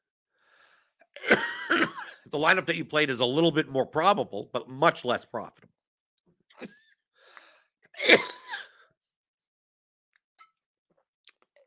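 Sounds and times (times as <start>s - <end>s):
person coughing: 1.2s - 2.2s, 8.0s - 8.8s
speech: 2.3s - 5.8s, 6.6s - 6.8s, 8.0s - 8.4s.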